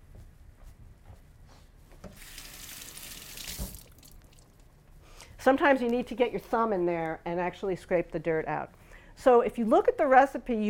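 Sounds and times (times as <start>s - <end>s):
tap water running over a cut leek as it is rinsed: 2.0s - 4.6s
speech: 5.4s - 10.6s.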